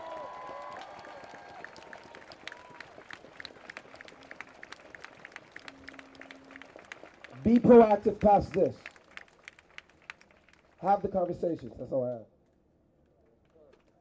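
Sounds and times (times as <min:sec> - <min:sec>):
high whistles: 0:00.0 - 0:10.3
people cheering: 0:00.0 - 0:12.1
crowd applauding outdoors: 0:00.0 - 0:12.2
speech: 0:07.4 - 0:08.8, 0:10.8 - 0:12.3.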